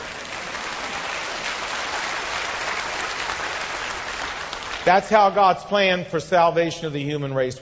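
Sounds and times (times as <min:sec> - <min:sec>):
audience clapping: 0:00.0 - 0:05.5
speech: 0:04.9 - 0:07.5.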